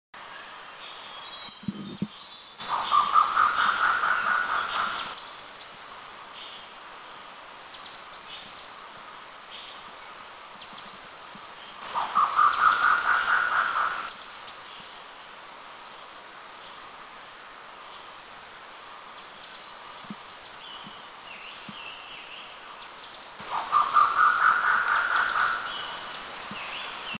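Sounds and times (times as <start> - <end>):
Grey-Peacock Pheasant calling in Eaglenest, India: 1.6 - 5.2, 11.8 - 14.1, 23.4 - 27.1.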